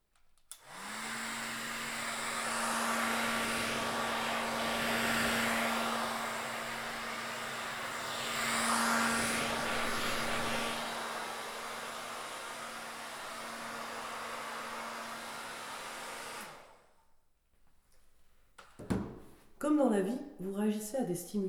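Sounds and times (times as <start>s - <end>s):
hair dryer blowing: 0.5s - 17.0s
speech: 19.9s - 21.4s.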